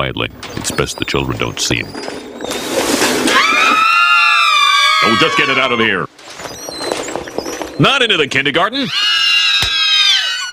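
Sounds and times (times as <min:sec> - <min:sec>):
speech: 0:00.0 - 0:02.6, 0:05.0 - 0:06.7, 0:07.8 - 0:09.2
piercing high-pitched blood-curdling scream: 0:03.2 - 0:06.0, 0:08.8 - 0:10.5.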